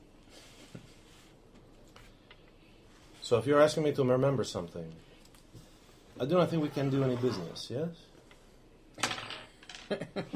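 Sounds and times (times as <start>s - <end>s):
speech: 3.3s - 5.1s, 6.2s - 8.1s, 9.9s - 10.3s
coins dropped onto a counter: 9.0s - 10.0s.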